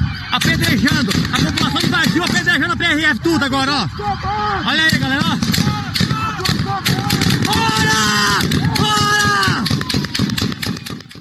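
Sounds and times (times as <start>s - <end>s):
crowd commotion of protesters in Brazil: 0.0s - 11.1s
gunshots at a protest in Brazil: 0.3s - 2.7s, 4.8s - 11.1s
speech: 3.0s - 5.7s
person shouting over a crowd of protesters: 5.6s - 9.7s.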